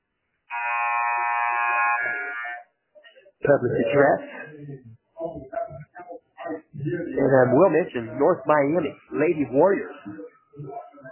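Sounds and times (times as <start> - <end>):
loud pregame buzzer blaring: 0.5 - 2.6
speech: 3.4 - 5.8, 6.8 - 10.2.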